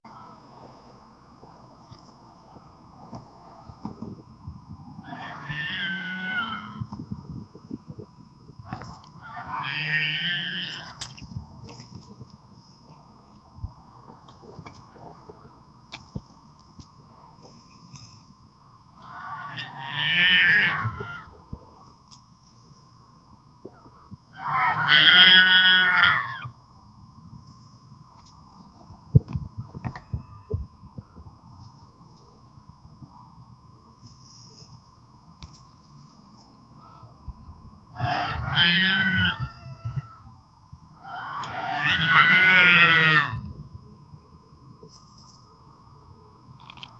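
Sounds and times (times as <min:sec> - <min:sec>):
cow calling: 0:05.0 - 0:06.9, 0:08.7 - 0:11.1, 0:19.0 - 0:21.4, 0:24.4 - 0:26.5, 0:38.0 - 0:40.2, 0:41.0 - 0:43.4.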